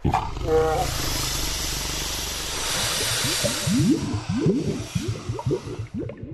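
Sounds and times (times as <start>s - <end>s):
deep guttural roar of the mythical water bull of the Vlasina mountain marsh: 0.0s - 2.6s
steady wash of hissing noise: 0.7s - 6.2s.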